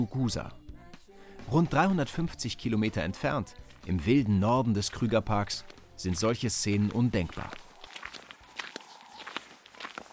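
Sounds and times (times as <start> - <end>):
speech: 0.0 - 0.6, 1.5 - 7.6
footsteps crossing a wide sandy firebreak in Kruger National Park: 3.5 - 10.1.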